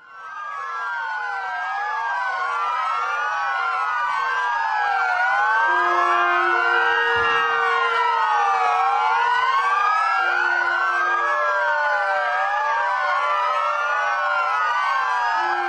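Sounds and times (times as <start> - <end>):
police sirens wailing: 0.0 - 15.6
steady low horn-like tones: 5.7 - 8.9.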